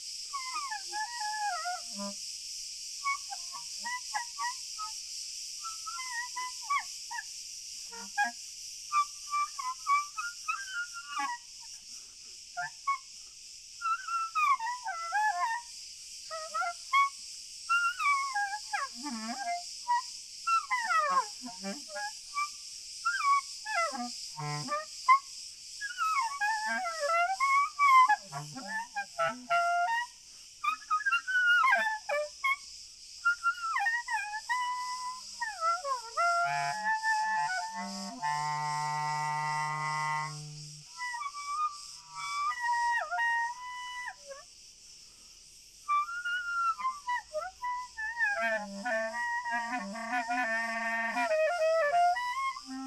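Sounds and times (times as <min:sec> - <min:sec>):
crickets chirping in the open: 0:00.0 - 0:52.8.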